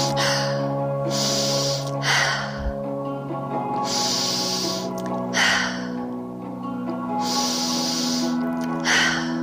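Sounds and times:
deep inhalations during a guided breathing exercise: 0:00.0 - 0:02.8, 0:03.8 - 0:06.1, 0:07.2 - 0:09.4
low musical drone: 0:00.0 - 0:09.4.

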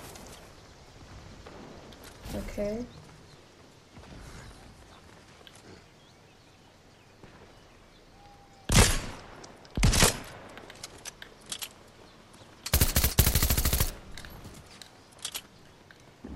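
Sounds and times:
speech: 0:02.4 - 0:03.0
video game gunfire: 0:12.7 - 0:14.0.

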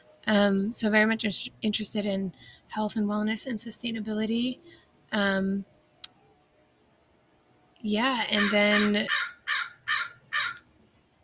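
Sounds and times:
speech: 0:00.3 - 0:05.7, 0:07.8 - 0:09.4
crow cawing: 0:08.4 - 0:10.7.

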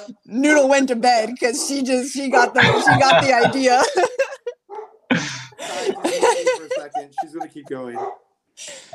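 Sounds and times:
speech: 0:00.1 - 0:04.5, 0:05.2 - 0:08.9
dog barking: 0:01.6 - 0:03.1, 0:04.7 - 0:05.1, 0:05.8 - 0:06.3, 0:07.9 - 0:08.3
laughter: 0:02.4 - 0:08.0.

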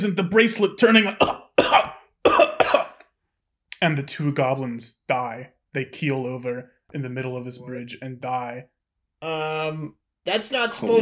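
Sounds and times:
speech: 0:00.0 - 0:01.9, 0:03.8 - 0:11.0
harsh raspy coughs from poisonous gas: 0:01.1 - 0:03.2.

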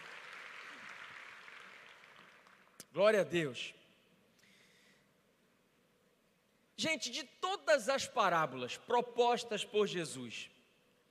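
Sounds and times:
audience applauding: 0:00.0 - 0:02.8
speech: 0:02.9 - 0:03.8, 0:06.8 - 0:10.6.

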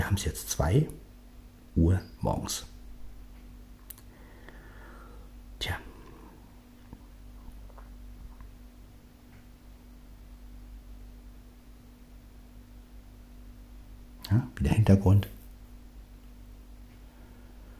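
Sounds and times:
refrigerator hum: 0:00.0 - 0:17.7
speech: 0:00.2 - 0:01.0, 0:01.8 - 0:02.7, 0:05.6 - 0:05.9, 0:14.3 - 0:15.4.

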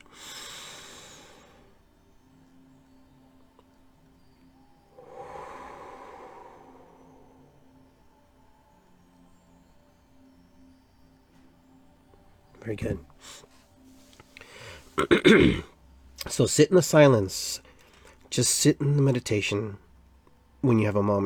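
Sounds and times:
deep breathing through the nose during a guided meditation exercise: 0:00.0 - 0:02.1, 0:04.8 - 0:08.4, 0:13.2 - 0:15.0
faint steady hum: 0:00.0 - 0:21.2
speech: 0:12.7 - 0:13.5, 0:15.0 - 0:17.7, 0:18.3 - 0:19.8, 0:20.6 - 0:21.2.

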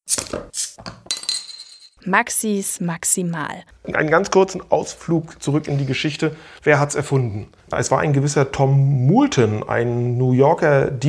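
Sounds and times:
glasses clinking in a toast: 0:00.1 - 0:02.0
speech: 0:02.1 - 0:11.0.

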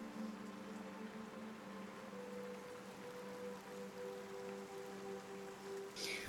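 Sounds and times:
heavy rain: 0:00.0 - 0:06.2.

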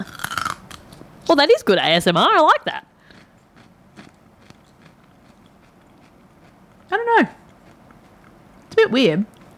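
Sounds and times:
chewing crackles: 0:00.0 - 0:01.0, 0:03.0 - 0:09.5
crunchy bite into celery with peanut butter: 0:00.0 - 0:01.0, 0:03.0 - 0:06.8, 0:07.4 - 0:08.8
speech: 0:01.3 - 0:02.9, 0:06.9 - 0:07.4, 0:08.8 - 0:09.4.

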